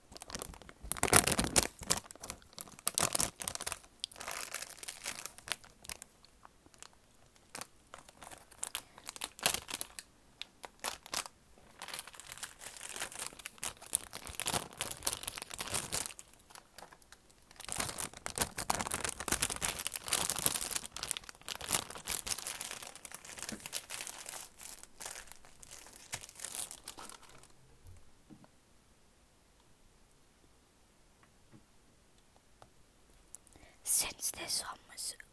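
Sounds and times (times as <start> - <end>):
plastic food packet crinkling and crackling: 0.1 - 27.6
speech: 34.4 - 34.8.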